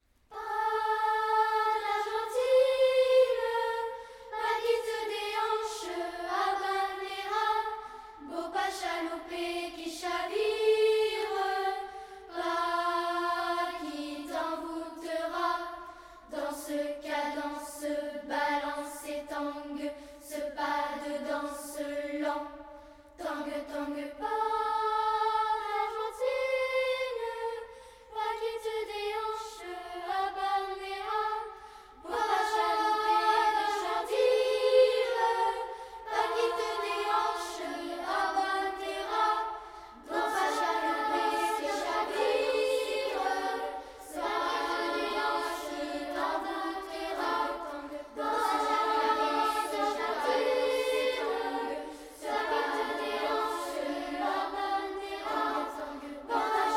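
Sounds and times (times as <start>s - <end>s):
a cappella singing: 0.3s - 56.7s.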